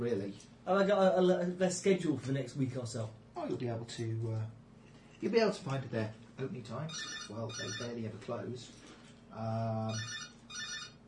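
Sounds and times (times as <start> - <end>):
speech: 0.0 - 4.6, 5.2 - 10.2
telephone ringing with a loud electronic tone: 6.9 - 8.0, 9.9 - 11.0.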